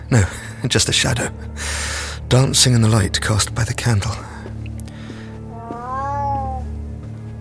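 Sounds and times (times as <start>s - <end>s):
speech: 0.1s - 4.3s
cat giving a drawn-out wavering meow: 5.5s - 6.8s.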